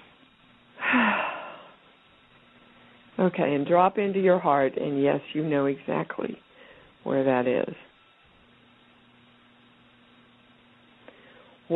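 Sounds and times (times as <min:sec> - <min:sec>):
deep breath during a guided relaxation exercise: 0:00.8 - 0:01.8, 0:06.5 - 0:07.0, 0:11.0 - 0:11.6
speech: 0:03.2 - 0:07.9.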